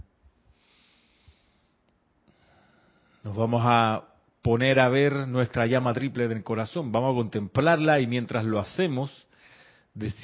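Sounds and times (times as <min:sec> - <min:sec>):
slow deep breath in and out during a guided relaxation meditation: 0:00.3 - 0:03.3, 0:09.3 - 0:10.0
speech: 0:03.2 - 0:09.3, 0:10.0 - 0:10.2.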